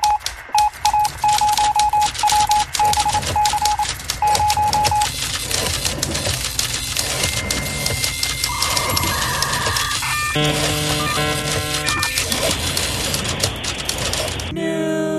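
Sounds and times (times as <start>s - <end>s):
steady repeating beeps: 0.0s - 5.1s, 7.0s - 13.4s
electronic news sound effect jingle: 0.0s - 5.3s, 6.9s - 14.5s
rapid typewriter-like clatter: 0.0s - 14.5s.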